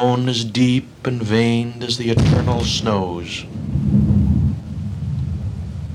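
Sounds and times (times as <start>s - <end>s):
speech: 0.0s - 3.6s
deep rolling rumble of thunder: 0.0s - 5.9s.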